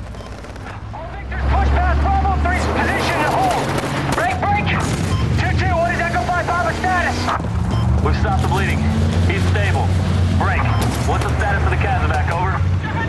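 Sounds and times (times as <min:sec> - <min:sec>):
gunshots during a firefight: 0:00.0 - 0:01.6, 0:02.4 - 0:05.6, 0:10.5 - 0:12.2
deep engine-like rumble of pulling vehicles: 0:00.0 - 0:13.0.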